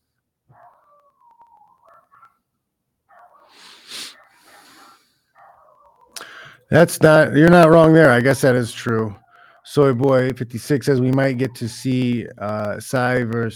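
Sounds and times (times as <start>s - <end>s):
neighbor's dogs barking and howling: 0.5s - 2.5s, 3.1s - 6.2s, 7.1s - 12.2s
speech: 6.7s - 9.2s, 9.8s - 13.5s.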